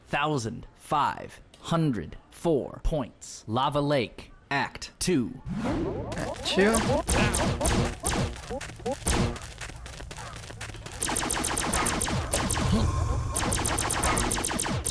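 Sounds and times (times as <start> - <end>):
speech: 0.1 - 9.5
other video game sounds: 5.5 - 9.6, 11.0 - 14.8
rapid video game gunfire from a character shooting while crouched: 6.6 - 9.5, 11.0 - 12.8, 13.4 - 14.8.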